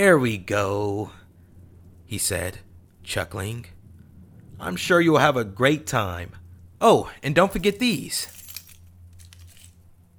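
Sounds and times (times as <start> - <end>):
speech: 0.0 - 1.2, 2.1 - 3.8, 4.6 - 8.4
steady low hum: 0.0 - 10.1
car keys jingling while pulled from a pocket: 7.4 - 9.8.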